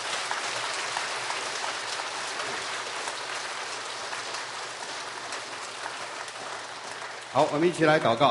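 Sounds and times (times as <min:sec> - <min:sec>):
large crowd applauding: 0:00.0 - 0:08.2
speech: 0:07.4 - 0:08.2.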